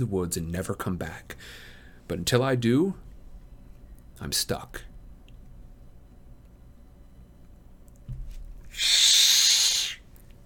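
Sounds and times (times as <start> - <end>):
speech: 0.0 - 3.0, 4.2 - 4.9, 8.8 - 9.1
tomcat hissing in a kitchen doorway: 8.7 - 10.0.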